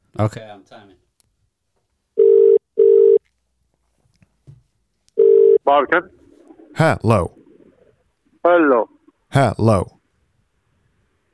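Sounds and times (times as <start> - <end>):
speech: 0.2 - 0.6, 5.7 - 6.2, 6.8 - 7.4, 8.4 - 10.0
telephone ringback tone on an outgoing call to order food: 2.2 - 3.2, 5.2 - 5.6.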